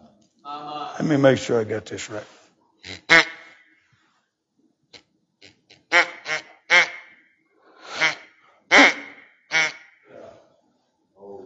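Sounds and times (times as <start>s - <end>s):
speech: 0.5s - 3.1s
decoy duck call sounding fake quacks: 2.8s - 3.6s, 5.8s - 7.1s, 7.8s - 10.0s.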